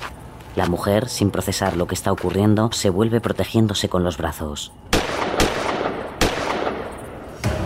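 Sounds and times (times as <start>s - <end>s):
speech: 0.6s - 5.3s
gunshots fired at night: 4.9s - 7.6s.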